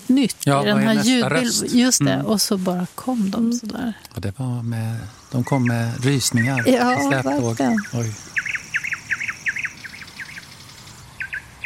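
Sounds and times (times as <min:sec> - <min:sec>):
soft hiss: 0:00.0 - 0:11.6
speech: 0:00.1 - 0:08.3
nightingale singing in shoreline scrubland at Jätteröns nature reserve in Halland Sweden: 0:04.8 - 0:11.6.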